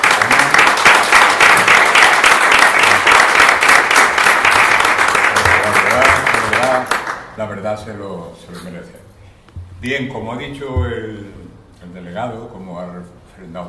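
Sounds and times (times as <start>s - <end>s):
audience applause at the opening of a flamenco studies exhibition: 0.0s - 7.3s
speech: 7.5s - 9.1s, 9.8s - 13.6s.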